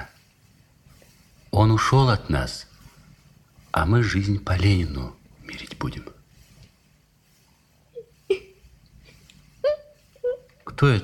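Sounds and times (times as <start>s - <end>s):
low steady hum: 0.0s - 11.0s
speech: 1.6s - 2.7s, 3.7s - 6.2s, 10.8s - 11.0s
frightened girl crying quietly: 9.6s - 10.5s.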